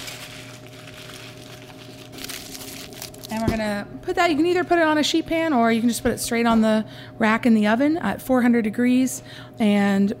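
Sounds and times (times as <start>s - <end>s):
aluminum foil crinkling as it is wrapped around a head of garlic: 0.0s - 3.4s
speech: 3.3s - 10.1s.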